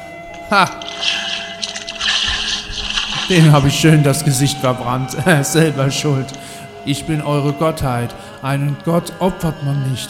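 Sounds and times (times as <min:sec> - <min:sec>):
speech: 0:00.5 - 0:01.4, 0:03.3 - 0:10.0
water pouring and splashing: 0:00.6 - 0:03.8.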